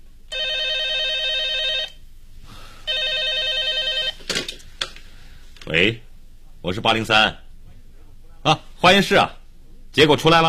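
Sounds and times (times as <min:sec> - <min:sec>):
telephone bell ringing in an office: 0:00.3 - 0:02.0, 0:02.9 - 0:04.2
speech: 0:05.7 - 0:07.4, 0:08.4 - 0:09.4, 0:10.0 - 0:10.4.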